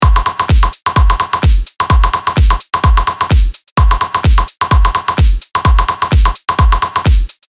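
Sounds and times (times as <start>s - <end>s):
basic percussion: 0.0s - 7.5s.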